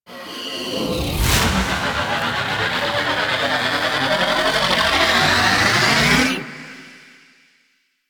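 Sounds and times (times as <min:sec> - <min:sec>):
cinematic laser build-up: 0:00.7 - 0:05.8.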